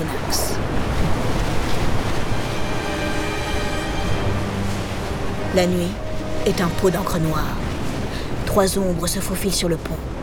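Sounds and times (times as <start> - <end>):
rain: 0.0 - 10.2
rough, agitated sea waves churning: 0.0 - 10.2
speech: 5.6 - 7.6, 8.5 - 10.2.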